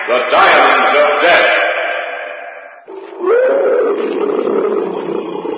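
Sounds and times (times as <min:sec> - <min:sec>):
speech: 0:00.1 - 0:01.6
tiger roaring in the jungle: 0:02.9 - 0:05.5.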